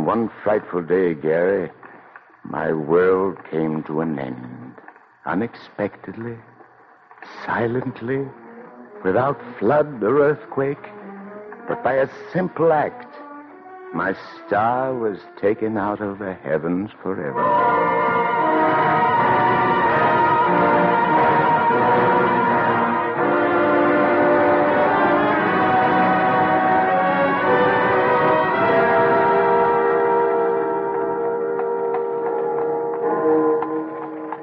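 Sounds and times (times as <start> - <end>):
speech: 0.1 - 1.8, 2.4 - 4.6, 5.2 - 6.5, 7.2 - 8.4, 9.0 - 11.0, 11.7 - 13.1, 13.9 - 18.0
church bells pealing: 17.4 - 34.4.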